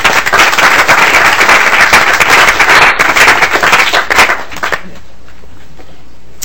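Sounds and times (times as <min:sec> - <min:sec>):
crowd at a committee meeting applauding: 0:00.0 - 0:05.0.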